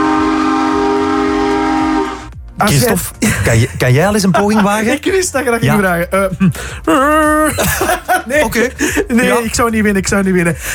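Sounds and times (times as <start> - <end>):
imitation steam train whistle sounding a multi-tone chord: 0.0 - 2.4
low rhythmic steam train chuffing: 0.3 - 10.7
speech: 2.6 - 10.7
laughter: 3.2 - 9.6.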